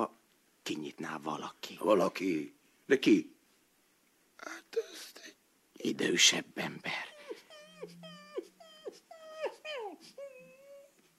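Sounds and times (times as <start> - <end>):
speech: 0.0 - 3.4, 4.4 - 7.1
starving dog whining in high whimpers: 7.1 - 11.1.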